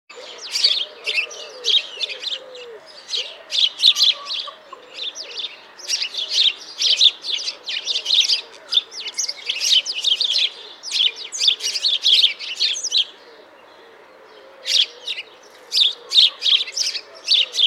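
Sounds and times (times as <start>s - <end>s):
house sparrow Passer domesticus chattering in rapid chirps: 0.4s - 13.0s, 14.6s - 17.6s.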